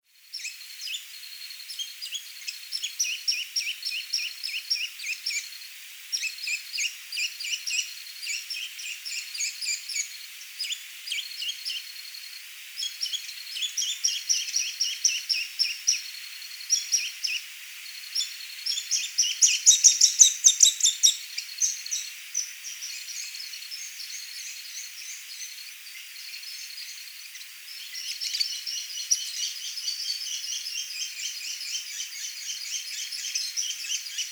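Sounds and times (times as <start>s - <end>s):
Accipiter superciliosus song: 0.2s - 34.2s.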